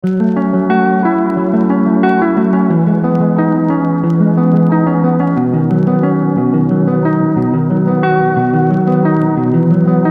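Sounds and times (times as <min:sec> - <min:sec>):
90bpm Mixolydian MIDI music: 0:00.0 - 0:10.0.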